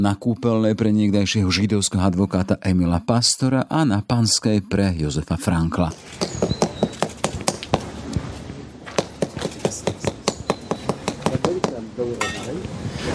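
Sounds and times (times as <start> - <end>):
speech: 0.0 - 6.6
birds chirping outdoors: 5.5 - 12.0
hammer tapping on a golden-coloured memorial stone in Bratislava Slovakia: 5.8 - 7.9, 8.9 - 12.5.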